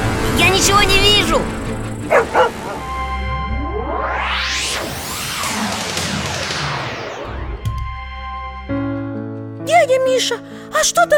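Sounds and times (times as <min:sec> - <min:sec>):
speech: 0:00.4 - 0:02.6, 0:10.1 - 0:11.1
shepherd dog barking: 0:02.1 - 0:02.8
loud rushing whoosh: 0:02.1 - 0:08.7.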